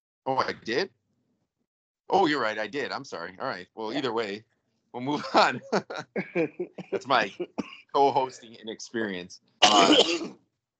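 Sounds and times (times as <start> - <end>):
speech: 0.2 - 1.0, 2.1 - 10.4
laughter: 0.3 - 0.8, 2.1 - 4.4, 5.0 - 9.2
harsh throaty cough: 5.1 - 6.4, 9.6 - 10.3.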